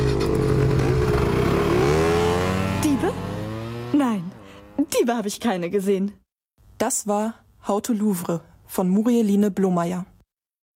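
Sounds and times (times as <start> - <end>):
small motor scooter engines revving and accelerating: 0.0 - 4.9
speech: 5.1 - 6.2, 6.8 - 10.1.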